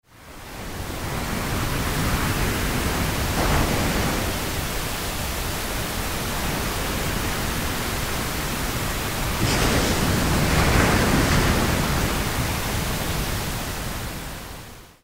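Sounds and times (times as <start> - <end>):
pink noise: 0.1 - 15.0.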